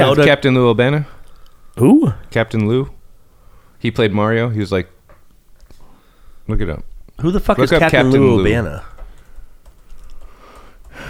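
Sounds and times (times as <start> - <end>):
speech: 0.0 - 1.2, 1.8 - 3.0, 3.8 - 5.0, 6.5 - 8.9
steady hiss: 0.0 - 11.0
typing on a computer keyboard: 8.9 - 11.0.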